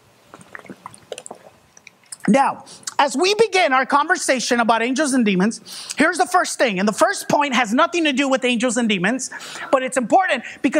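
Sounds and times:
person sipping water with mouth clicks and slurp: 0.3 - 3.0
quiet swallowing: 0.3 - 3.0
speech: 2.3 - 10.7.

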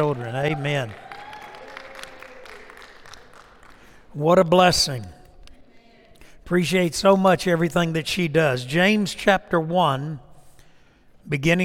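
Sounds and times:
speech: 0.0 - 1.1, 4.2 - 5.2, 6.5 - 10.2, 11.2 - 11.6
audience applauding: 0.0 - 4.2.

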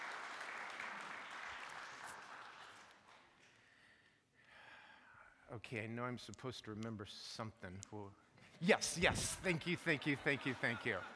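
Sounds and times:
large gathering applauding: 0.0 - 3.3
speech: 5.5 - 11.1
laughter: 8.7 - 11.1.

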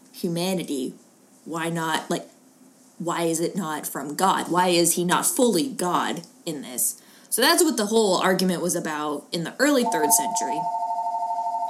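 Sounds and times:
speech: 0.2 - 2.3, 3.0 - 10.8
telephone ringing with a warbling electronic tone in a working church: 9.8 - 11.6.

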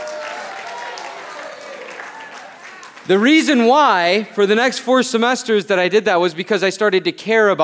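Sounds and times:
large audience applauding: 0.0 - 4.3
crowd cheering: 0.0 - 4.7
speech: 3.1 - 7.6.

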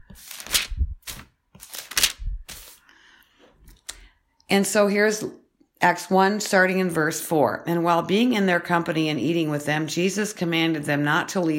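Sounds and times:
thin paper pages of a Bible being turned: 0.0 - 2.8
speech: 0.2 - 0.5, 4.5 - 11.5.

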